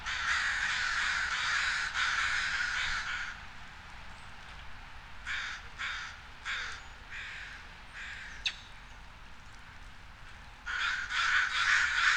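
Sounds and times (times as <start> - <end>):
crow cawing: 0.1 - 3.4, 5.3 - 8.4, 10.7 - 12.1.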